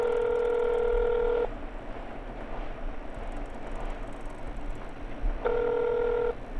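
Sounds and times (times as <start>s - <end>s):
phone line ringing with electronic ring tones: 0.0s - 1.5s, 5.4s - 6.4s
continuous low rumbling noise: 0.0s - 6.5s.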